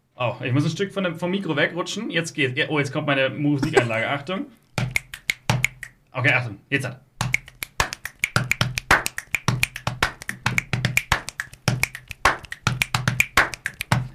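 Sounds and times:
speech: 0.2s - 4.6s, 6.1s - 7.1s
crisp finger snaps in body percussion: 4.9s - 6.0s, 7.2s - 14.0s.

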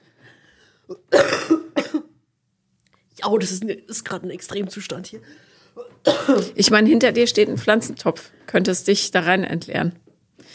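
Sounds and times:
person coughing: 0.9s - 2.2s, 5.8s - 6.6s
speech: 3.2s - 10.5s.

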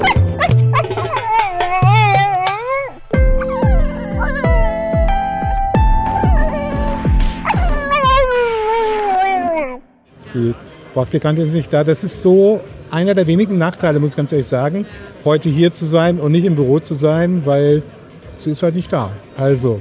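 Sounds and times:
dog barking, whining and yipping: 0.0s - 9.9s
speech: 11.0s - 19.7s.

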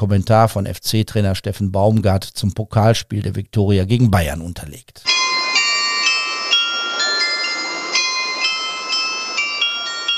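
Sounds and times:
speech: 0.0s - 5.2s
carillon on a fragrance house in Cologne Germany playing a melody: 5.1s - 10.1s.

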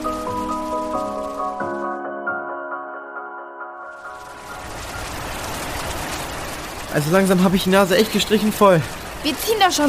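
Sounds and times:
steady rain: 0.0s - 2.4s, 3.8s - 9.8s
sustained musical tones: 0.0s - 6.8s
speech: 6.9s - 9.8s.

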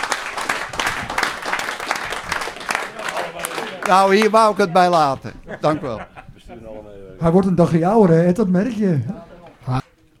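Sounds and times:
audience applause: 0.0s - 5.2s
laughter: 2.6s - 7.2s
speech: 3.9s - 10.1s.

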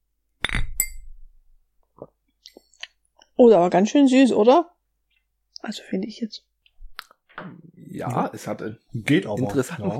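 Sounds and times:
glasses clinking together in a toast: 0.4s - 1.2s
speech: 3.4s - 4.7s, 5.6s - 6.5s, 7.4s - 9.9s.

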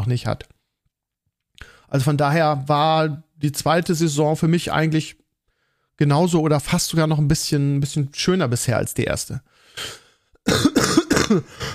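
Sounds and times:
speech: 0.0s - 0.5s, 1.9s - 5.2s, 6.0s - 10.7s, 11.3s - 11.7s
harsh raspy coughing fit: 9.8s - 11.7s.

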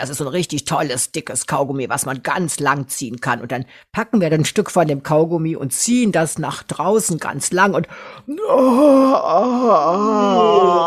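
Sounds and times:
speech: 0.0s - 10.8s
exaggerated drawn-out voiced yawn: 8.3s - 10.8s.

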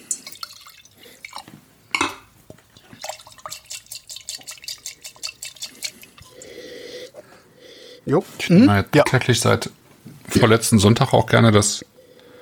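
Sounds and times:
wine pouring into a wine glass: 0.0s - 1.5s, 2.6s - 7.1s
wine glasses clinking and knocking as they are switched: 1.9s - 6.4s
speech: 8.1s - 11.9s.

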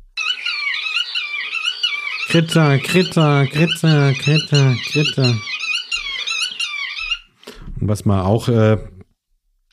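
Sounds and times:
black-tailed godwit calling: 0.1s - 7.4s
speech: 2.3s - 5.5s, 7.8s - 8.9s.

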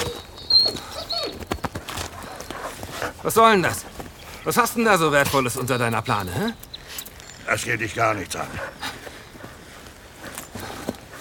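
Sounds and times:
dog whimpering in short high whines: 0.0s - 2.6s
speech: 3.2s - 6.6s, 7.5s - 8.8s.

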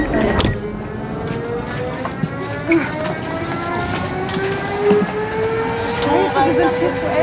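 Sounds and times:
moving train rumble: 0.0s - 7.2s
voices of people inside a train: 1.6s - 7.2s.

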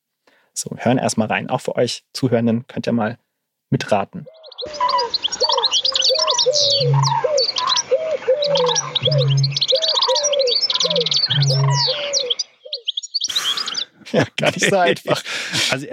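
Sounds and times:
speech: 0.6s - 4.8s, 6.6s - 7.3s, 14.1s - 15.9s
mixed bird song chorus of chirps and warbling: 4.2s - 14.0s
laughter: 13.3s - 15.9s.

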